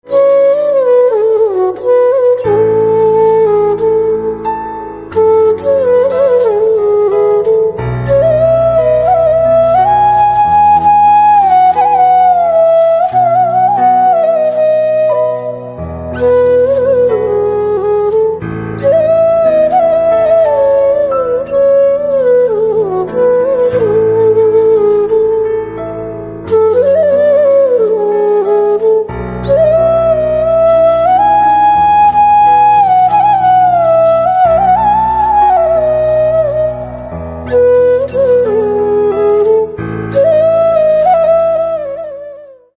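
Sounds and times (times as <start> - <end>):
instrumental flute ringtone: 0.1 - 25.5, 26.5 - 42.7.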